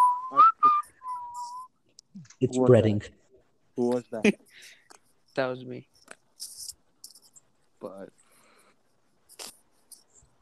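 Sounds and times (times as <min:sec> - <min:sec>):
person whistling a short wavering tune: 0:00.0 - 0:01.7
speech: 0:02.4 - 0:03.2, 0:03.8 - 0:04.8, 0:05.4 - 0:06.5, 0:07.8 - 0:08.2.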